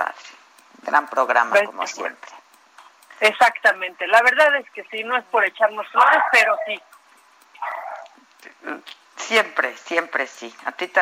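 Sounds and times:
faint hiss: 0.0 - 11.0
speech: 0.9 - 2.4, 3.2 - 6.8, 8.7 - 11.0
small dogs barking and yelping: 5.8 - 8.2.

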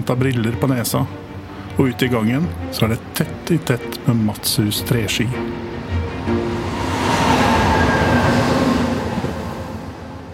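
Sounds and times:
speech: 0.0 - 5.7, 6.3 - 6.7
passenger train rumbling along the rails at full speed: 3.3 - 10.3.

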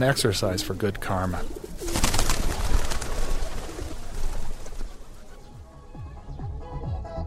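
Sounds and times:
speech: 0.0 - 1.6
flock of pigeons cooing: 0.0 - 5.6.

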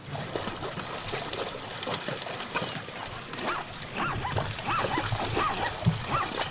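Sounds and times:
zebras wading through shallow water: 0.0 - 6.5
yelping barking animal calls: 3.4 - 6.5.

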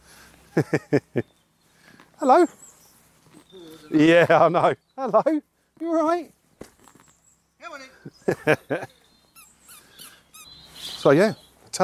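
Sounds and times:
laughter: 0.6 - 1.2, 8.2 - 9.0
speech: 0.6 - 1.4, 2.2 - 2.7, 3.5 - 6.4, 7.8 - 9.0, 11.0 - 11.8
dogs whining and yelping: 8.8 - 10.9.

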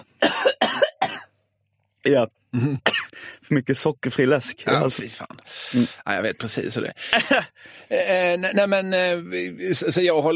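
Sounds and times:
harsh coughs: 0.0 - 1.3, 2.6 - 3.2
speech: 2.0 - 2.9, 3.5 - 10.3
laughter: 7.0 - 7.6.

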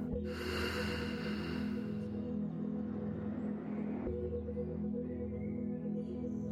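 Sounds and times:
steady low musical drone: 0.0 - 6.5
long airy breath exhaled slowly during a guided breathing exercise: 0.3 - 2.0.

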